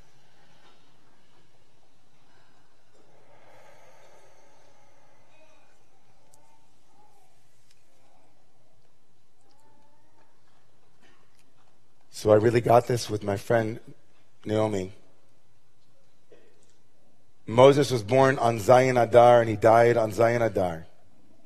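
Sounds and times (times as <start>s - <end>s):
deep breath during a guided breathing exercise: 0.0s - 8.6s
speech: 12.2s - 15.0s, 17.5s - 20.9s.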